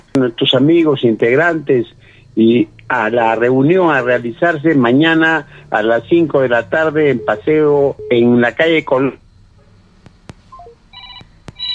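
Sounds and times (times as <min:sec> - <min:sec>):
speech: 0:00.2 - 0:09.2
short electronic tone bursts: 0:06.6 - 0:08.4, 0:10.4 - 0:11.7
telephones ringing on a phone line with crossed calls: 0:06.8 - 0:08.4, 0:10.6 - 0:11.7
sharp clicks: 0:10.0 - 0:10.5.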